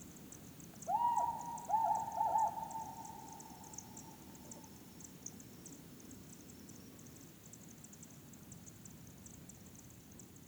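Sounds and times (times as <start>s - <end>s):
Hume's owl hooting, compound hooting of a presumed female: 0.9s - 4.6s.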